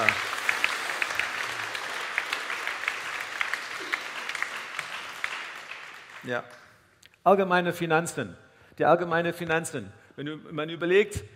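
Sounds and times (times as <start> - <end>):
audience clapping: 0.0 - 6.8
speech: 6.2 - 11.3.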